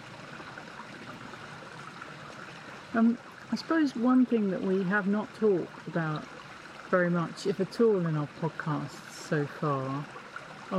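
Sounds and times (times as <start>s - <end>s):
small crystal-clear stream flowing over a rocky pebbly bed: 0.0s - 10.7s
speech: 2.9s - 10.7s.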